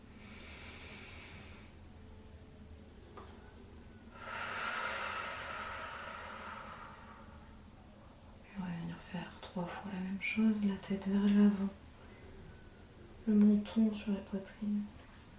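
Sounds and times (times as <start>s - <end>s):
deep breathing in a belly-breathing exercise: 0.0s - 1.8s, 4.1s - 7.5s
speech: 9.6s - 11.8s, 13.3s - 15.0s.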